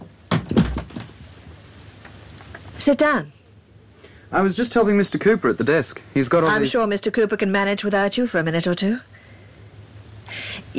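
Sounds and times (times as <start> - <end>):
door being closed with dull low thuds: 0.0 - 1.2
speech: 2.8 - 3.4, 4.3 - 9.2, 10.3 - 10.7.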